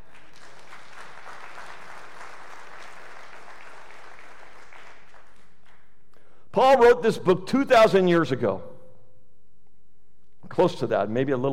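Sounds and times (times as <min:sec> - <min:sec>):
audience clapping: 0:00.0 - 0:06.0
speech: 0:06.6 - 0:08.7, 0:10.6 - 0:11.5.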